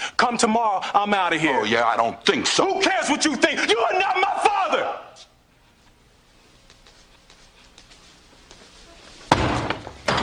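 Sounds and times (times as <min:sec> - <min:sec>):
speech: 0:00.2 - 0:05.0
door bursting open with a loud crash: 0:09.3 - 0:10.2
heavy thud: 0:09.3 - 0:10.2.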